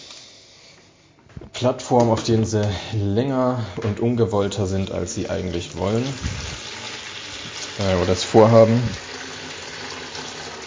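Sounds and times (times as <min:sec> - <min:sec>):
speech: 0:01.6 - 0:06.6, 0:07.8 - 0:09.1
water running from a tap: 0:04.6 - 0:10.6.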